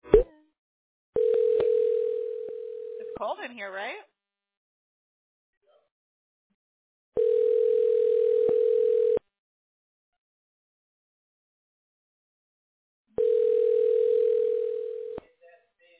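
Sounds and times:
telephone dial tone: 0:01.2 - 0:03.1, 0:07.2 - 0:09.2, 0:13.2 - 0:15.2
speech: 0:03.2 - 0:04.1.

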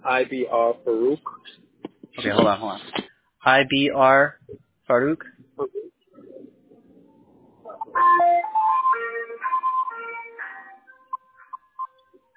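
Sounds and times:
speech: 0:00.0 - 0:01.6, 0:02.2 - 0:05.8
ice cream truck jingle with bright stepped tones: 0:07.9 - 0:11.8.

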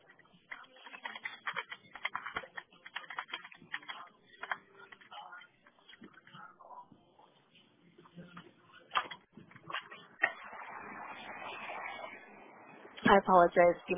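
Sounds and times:
typing on a keyboard: 0:00.0 - 0:05.2
speech: 0:13.1 - 0:13.9.

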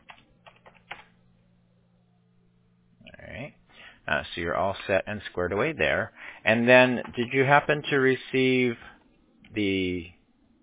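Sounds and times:
typing on a computer keyboard: 0:00.0 - 0:01.1
speech: 0:04.1 - 0:08.9, 0:09.5 - 0:10.2.

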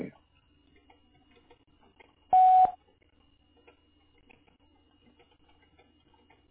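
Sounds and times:
voicemail answering machine beep: 0:02.3 - 0:02.8.

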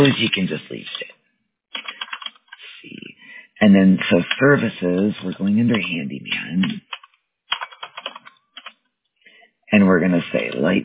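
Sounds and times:
speech: 0:00.0 - 0:01.1, 0:03.6 - 0:06.8, 0:09.7 - 0:10.8
typing on a computer keyboard: 0:01.8 - 0:02.6, 0:06.7 - 0:08.8.

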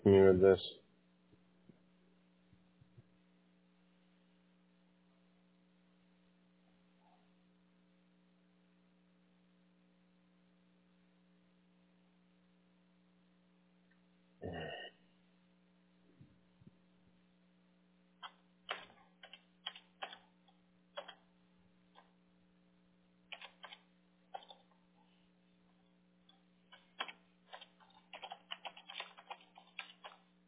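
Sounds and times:
speech: 0:00.0 - 0:00.8
low steady hum: 0:00.0 - 0:30.4
thumbs typing a text message on a phone: 0:18.2 - 0:21.3, 0:23.3 - 0:24.8, 0:26.7 - 0:30.3.

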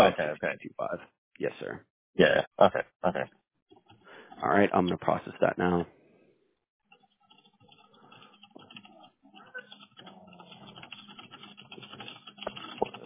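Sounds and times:
speech: 0:00.0 - 0:03.4, 0:04.4 - 0:06.0
typing on a mechanical keyboard: 0:06.9 - 0:13.0.

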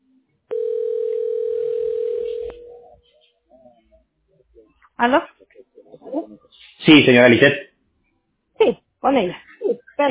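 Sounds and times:
faint low noise: 0:00.0 - 0:10.0
telephone dial tone while placing a call: 0:00.5 - 0:02.7
speech: 0:05.0 - 0:05.4, 0:06.9 - 0:07.7, 0:08.6 - 0:09.4.

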